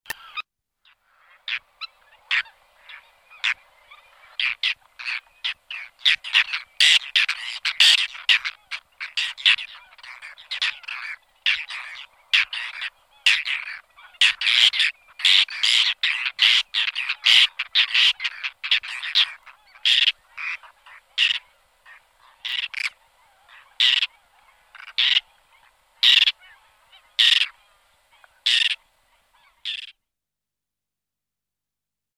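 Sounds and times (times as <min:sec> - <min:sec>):
white-cheeked tern calling: 0:00.1 - 0:29.9.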